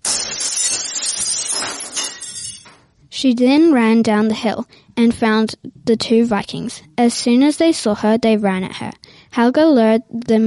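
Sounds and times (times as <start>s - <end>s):
drinking glasses smashing onto a house floor spilled with mead: 0.0s - 2.9s
speech: 3.2s - 10.4s.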